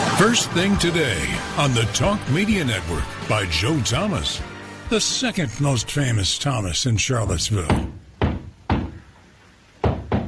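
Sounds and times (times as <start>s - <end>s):
speech: 0.2s - 7.9s
knocking on a door: 7.7s - 9.0s, 9.8s - 10.2s.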